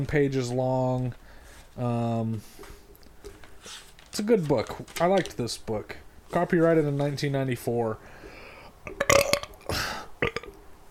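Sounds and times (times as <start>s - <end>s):
speech: 0.0s - 1.2s, 1.8s - 2.8s, 3.6s - 8.2s
long rough burp after eating onion rings: 8.8s - 10.6s.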